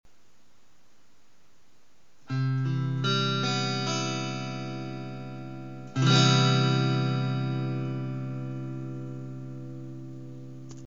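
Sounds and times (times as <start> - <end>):
guitar playing a C major seventh chord: 2.3 - 10.8.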